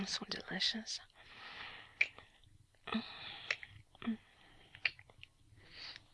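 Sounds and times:
speech: 0.0 - 1.1, 2.9 - 3.2, 4.0 - 4.2
quiet breathing: 0.7 - 6.1
slow soft kissing sounds with wet smacks: 4.8 - 5.1.

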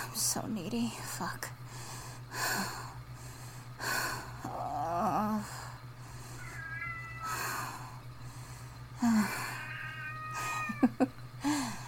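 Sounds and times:
speech: 0.4 - 1.6
steady low hum: 4.2 - 11.8
cat meowing: 6.4 - 7.9, 9.3 - 11.0.

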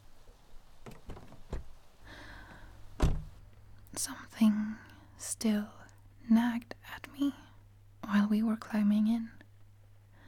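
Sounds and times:
car door locks clunking open in a parking lot: 0.8 - 1.8, 2.9 - 3.4
speech: 4.0 - 7.4, 8.1 - 9.4.

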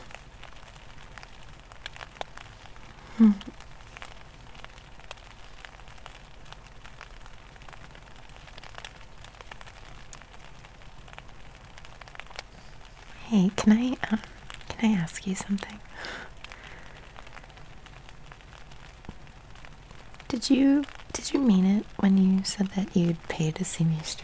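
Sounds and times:
steady rain pattering on a tent: 0.0 - 24.2
speech: 3.2 - 3.6, 15.3 - 15.8, 20.5 - 24.2.

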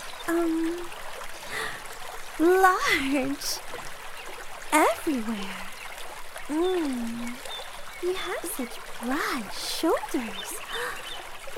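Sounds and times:
shower water running: 0.0 - 11.5
speech: 0.3 - 1.0, 2.4 - 3.8, 4.7 - 5.6, 6.5 - 11.5.

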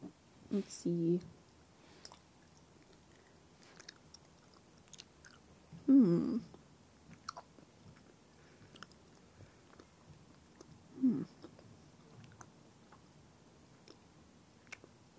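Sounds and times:
speech: 0.5 - 1.4, 5.9 - 6.6
chewing gummy candies shaped like leaves and strawberries: 2.0 - 5.4, 7.1 - 13.0, 14.6 - 15.1.

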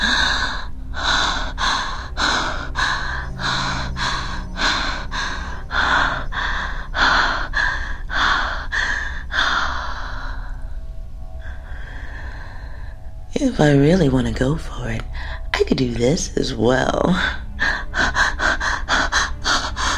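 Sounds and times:
rapid panting breaths: 0.0 - 10.5, 17.2 - 19.9
speech: 13.6 - 17.4.

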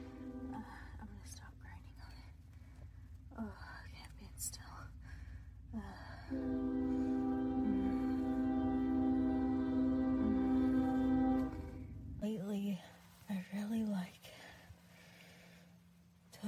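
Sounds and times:
train horn blast: 0.0 - 1.0, 6.3 - 12.2
train rumbling past: 0.0 - 2.1, 3.1 - 12.8
faint breathy sounds: 0.0 - 12.2, 12.8 - 16.4.

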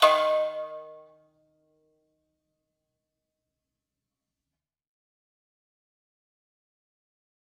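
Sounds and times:
single cymbal hit: 0.0 - 1.0.

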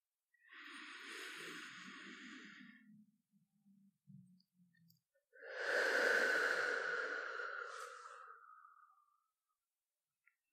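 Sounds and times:
slow deep breathing in and out: 0.5 - 2.9, 5.4 - 9.2.

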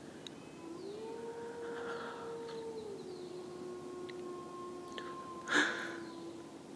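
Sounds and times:
long mournful howls: 0.4 - 6.7.

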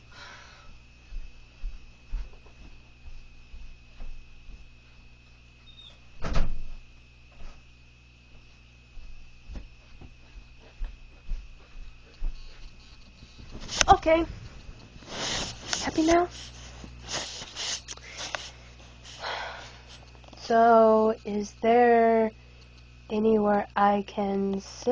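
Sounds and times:
low steady hum: 0.0 - 24.9
door shutting: 5.7 - 6.8
speech: 14.0 - 14.4, 16.0 - 16.6, 20.5 - 22.4, 23.1 - 24.9.

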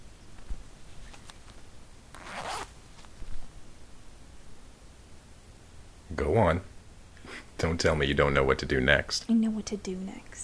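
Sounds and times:
fabric rustling: 0.4 - 3.6
clothing zipper pulled down: 2.1 - 2.7
speech: 6.2 - 6.7, 7.6 - 10.4.

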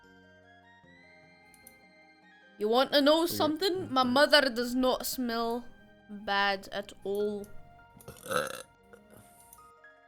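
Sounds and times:
speech: 2.6 - 7.6, 8.2 - 8.7
burp-like croak from a gruff ogre voice impression: 8.0 - 9.4.

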